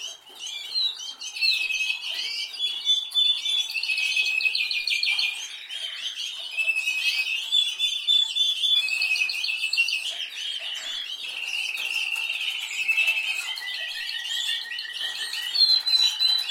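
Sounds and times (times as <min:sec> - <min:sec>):
canary singing: 0:00.0 - 0:16.4.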